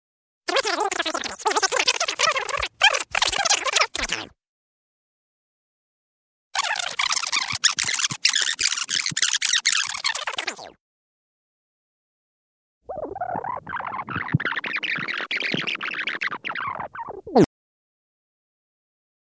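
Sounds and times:
voice rewinding on tape recorder: 0.5s - 4.4s, 6.6s - 10.8s, 12.9s - 17.5s.

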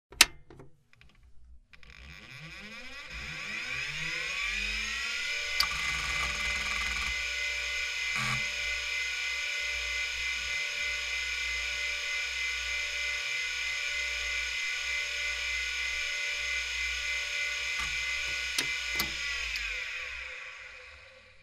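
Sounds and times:
computer switching on and off: 1.9s - 21.4s
computer fan humming: 5.3s - 21.0s.

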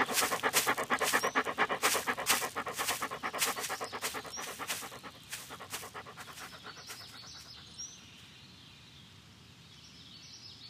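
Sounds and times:
dog urinating on grass: 0.0s - 6.7s
dog footsteps rustling in grass: 0.0s - 7.4s
dog panting while walking on grass: 0.0s - 7.9s.

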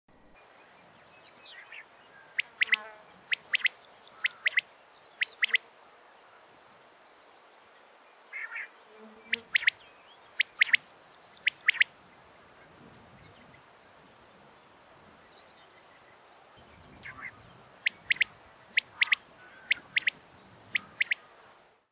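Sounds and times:
quail singing: 1.6s - 4.6s, 5.2s - 5.6s, 9.3s - 9.8s, 10.4s - 11.9s, 16.9s - 21.4s.

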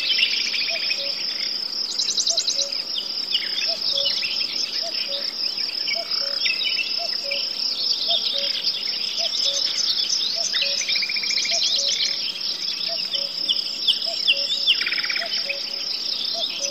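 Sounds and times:
busy songbirds chirping in a forest: 0.0s - 16.7s
constant high cricket chorus in a forest: 0.0s - 16.7s
cuckoo giving a low two-note call in a forest: 3.6s - 12.2s, 12.8s - 16.7s.

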